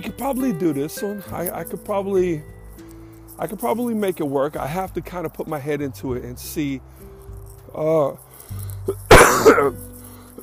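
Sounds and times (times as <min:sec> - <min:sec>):
speech: 0:00.0 - 0:02.6, 0:03.4 - 0:07.1, 0:07.8 - 0:09.9
harsh loud cough trailing into rougher rasps: 0:09.1 - 0:09.8.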